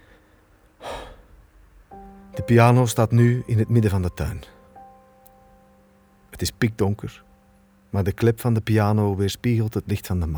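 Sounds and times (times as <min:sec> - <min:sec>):
heavy breathy gasp of someone out of breath: 0:00.0 - 0:01.4
steady harmonic tone: 0:01.9 - 0:09.7
speech: 0:02.4 - 0:04.6, 0:06.4 - 0:07.3, 0:07.9 - 0:10.3.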